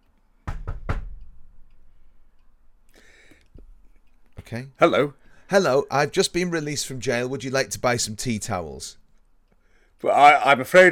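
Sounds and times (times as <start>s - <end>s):
sharp knocks on a door: 0.4s - 1.2s
speech: 4.5s - 9.0s, 10.0s - 10.9s.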